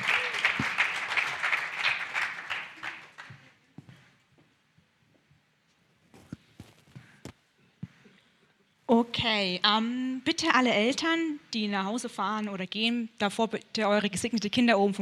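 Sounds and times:
church congregation applauding during a service: 0:00.0 - 0:03.5
speech: 0:08.9 - 0:15.0.

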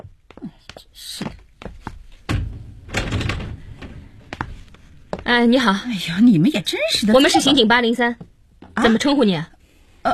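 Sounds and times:
residential door being unlatched and opened: 0:02.2 - 0:04.8
speech: 0:05.3 - 0:10.1.

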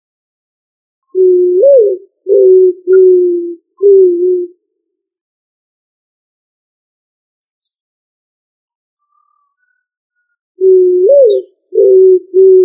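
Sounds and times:
pigeon cooing: 0:01.1 - 0:04.6, 0:10.6 - 0:12.6.

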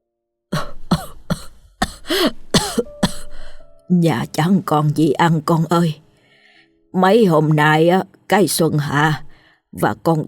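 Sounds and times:
old woman coughing hard in a kitchen: 0:00.6 - 0:03.5
speech: 0:02.1 - 0:02.4, 0:03.9 - 0:06.0, 0:06.9 - 0:10.2.

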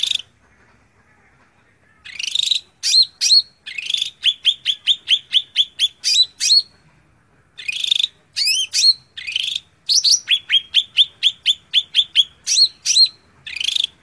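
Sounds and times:
greater green leafbird singing: 0:02.1 - 0:06.8, 0:07.6 - 0:14.0.

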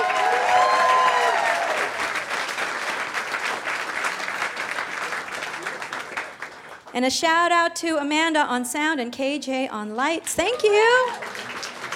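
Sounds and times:
audience applause at a live music show: 0:00.0 - 0:06.9, 0:11.0 - 0:11.9
speech: 0:07.0 - 0:11.5.

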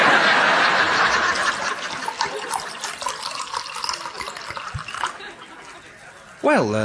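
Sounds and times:
laughter: 0:00.0 - 0:06.3
wine pouring into a glass: 0:01.6 - 0:05.2
speech: 0:06.4 - 0:06.8.

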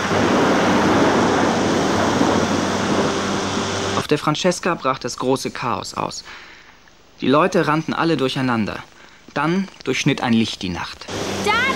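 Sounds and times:
sea churning and splashing as barrels burst through the water surface at night: 0:00.0 - 0:04.0
speech: 0:04.1 - 0:06.5, 0:07.2 - 0:11.7.

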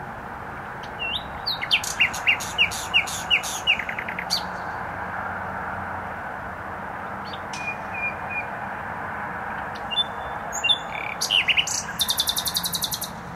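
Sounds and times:
steady road noise from a motorway: 0:00.0 - 0:13.3
nightingale singing in bushes: 0:00.8 - 0:04.8, 0:07.2 - 0:08.6, 0:09.6 - 0:13.2.

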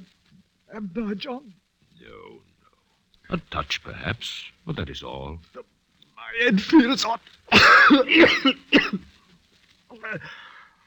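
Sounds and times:
speech: 0:00.7 - 0:02.5, 0:03.3 - 0:05.7, 0:06.3 - 0:09.2, 0:10.0 - 0:10.4
person coughing hard with hoarse throaty coughs: 0:07.5 - 0:09.0.

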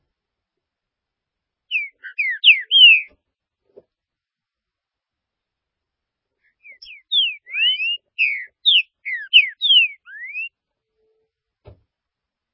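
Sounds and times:
green-winged saltator song: 0:01.7 - 0:03.1, 0:06.6 - 0:10.5.

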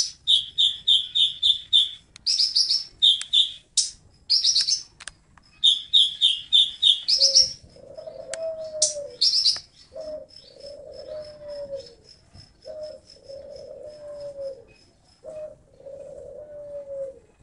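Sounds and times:
Oriental magpie-robin song with whistled notes and buzzy rattles: 0:00.0 - 0:16.0
low coo: 0:07.2 - 0:09.3, 0:09.9 - 0:17.4.

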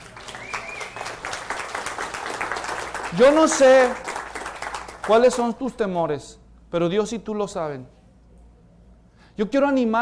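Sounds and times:
congregation applauding during a church sermon: 0:00.0 - 0:05.6
speech: 0:03.1 - 0:04.0, 0:05.1 - 0:08.0, 0:09.4 - 0:10.0.

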